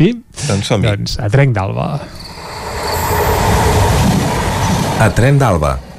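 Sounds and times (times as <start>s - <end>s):
speech: 0.0s - 2.2s, 5.0s - 5.9s
train on the R3 rail line in the Ripollès area rumbling along the rails: 2.1s - 5.9s.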